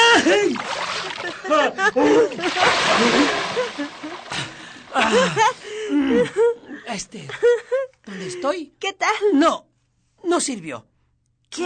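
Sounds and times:
laughter: 0.2 - 8.0
water thrown onto a person splashing: 0.4 - 5.5
speech: 1.6 - 3.4, 5.0 - 10.9.

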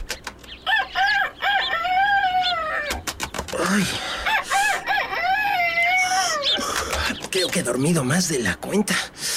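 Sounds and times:
rooster crowing: 0.6 - 3.0, 4.0 - 6.6
speech: 3.8 - 4.2, 7.4 - 9.2.

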